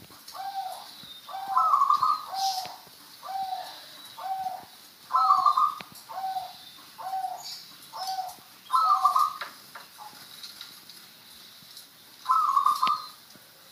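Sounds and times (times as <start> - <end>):
zebra dove song: 0.3 - 10.2, 12.3 - 13.2.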